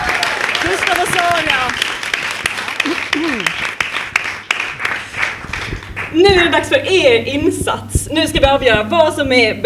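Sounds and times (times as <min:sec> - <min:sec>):
faint brief vocal sounds or cheers: 0:00.0 - 0:00.8
crowd applauding: 0:00.0 - 0:06.2
speech: 0:06.2 - 0:09.6.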